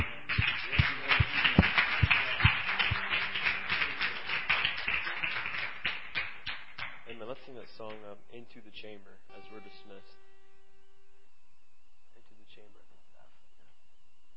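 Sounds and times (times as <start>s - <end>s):
audience clapping: 0.0s - 8.1s
speech: 8.4s - 10.2s.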